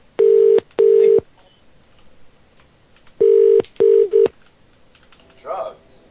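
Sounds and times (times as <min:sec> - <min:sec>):
telephone ringing with electronic double rings: 0:00.2 - 0:01.2, 0:03.2 - 0:04.3.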